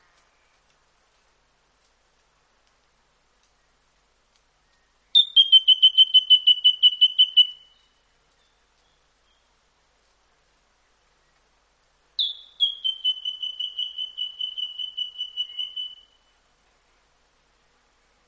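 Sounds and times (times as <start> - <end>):
White-throated treecreeper giving trills of high piping notes: 5.2 - 7.8, 12.2 - 16.2.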